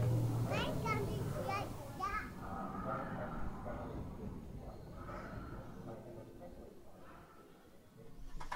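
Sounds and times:
children shrieking and chattering in an indoor play area: 0.0s - 2.4s
constant crowd din in an indoor play area: 0.0s - 7.8s.

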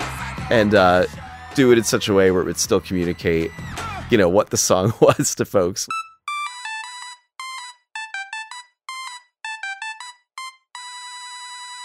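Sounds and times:
speech: 0.5s - 6.0s
monophonic square-wave electronic ringtone melody: 5.9s - 11.8s.

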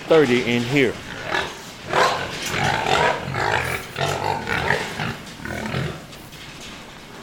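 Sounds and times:
growing pigs in a pen grunting and snuffling: 0.0s - 6.6s
speech: 0.1s - 1.1s.

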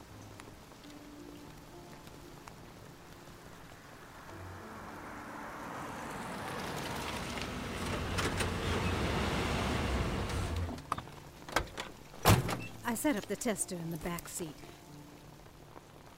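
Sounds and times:
truck engine rumbling while arriving: 5.0s - 11.0s
speech: 12.9s - 14.7s.

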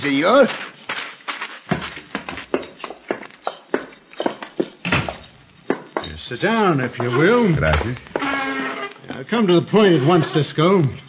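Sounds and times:
speech: 0.0s - 0.7s, 6.3s - 8.1s, 9.2s - 11.0s
hooves of several horses clopping and thudding to a stop: 0.0s - 9.3s.

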